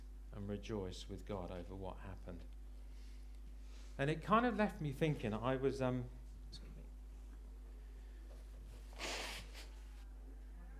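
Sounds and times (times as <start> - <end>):
low steady hum: 0.0 - 10.7
speech: 0.4 - 2.6, 4.0 - 6.7
person blowing nose: 8.9 - 9.9.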